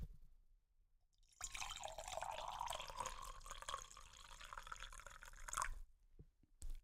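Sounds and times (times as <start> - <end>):
liquid pouring into a glass jug: 1.4 - 5.8.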